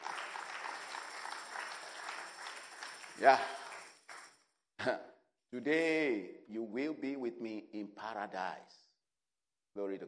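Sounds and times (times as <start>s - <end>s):
congregation clapping hands during a church service: 0.0s - 4.4s
speech: 3.2s - 3.6s, 4.8s - 8.8s, 9.8s - 10.0s.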